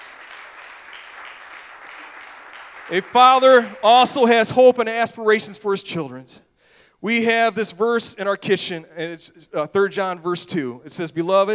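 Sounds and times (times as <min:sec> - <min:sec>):
congregation clapping hands in praise: 0:00.0 - 0:04.7
speech: 0:02.9 - 0:11.5.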